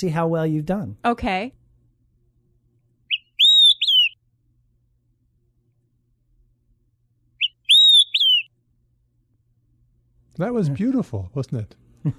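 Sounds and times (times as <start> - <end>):
speech: 0.0 - 1.6, 10.4 - 12.1
bird in an aviary whistling a three-note phrase: 3.1 - 4.2, 7.4 - 8.5.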